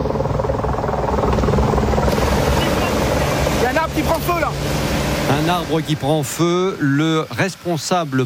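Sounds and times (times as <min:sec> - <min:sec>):
water-bombing firefighting helicopter rotor thudding overhead at a large fire: 0:00.0 - 0:05.9
speech: 0:04.0 - 0:08.2.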